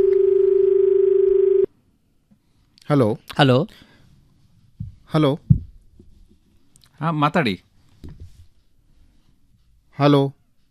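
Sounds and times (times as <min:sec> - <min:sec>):
steady electronic telephone tone of an incoming call on a radio phone-in: 0:00.0 - 0:01.7
speech: 0:02.9 - 0:03.9, 0:05.1 - 0:05.5, 0:07.0 - 0:08.2, 0:10.0 - 0:10.4.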